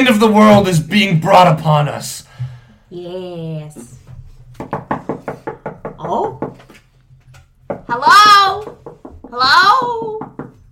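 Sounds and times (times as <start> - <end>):
speech: 0.0 - 2.3, 2.9 - 4.0, 7.9 - 10.4
rapid knocking on a door: 4.5 - 6.7, 7.6 - 10.7.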